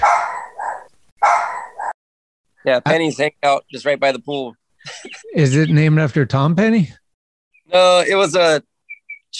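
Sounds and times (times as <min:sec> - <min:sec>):
dog barking: 0:00.0 - 0:02.0
speech: 0:02.6 - 0:07.0, 0:07.7 - 0:08.7.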